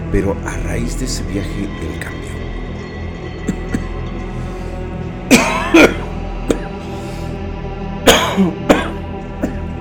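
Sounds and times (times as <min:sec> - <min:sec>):
speech: 0:00.1 - 0:02.3, 0:05.7 - 0:06.0
harsh coughing: 0:03.5 - 0:03.9, 0:05.3 - 0:06.9, 0:08.1 - 0:09.7.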